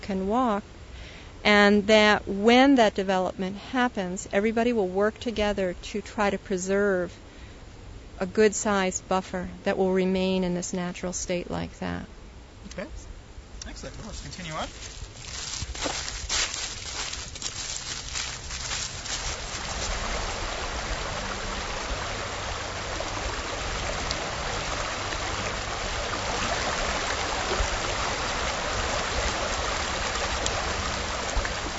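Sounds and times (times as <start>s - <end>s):
speech: 0.1s - 0.8s, 1.4s - 7.2s, 8.2s - 13.1s, 13.8s - 15.0s
scuffing footsteps: 14.0s - 20.0s
shallow creek water tumbling over rocks at a riffle: 14.0s - 31.7s.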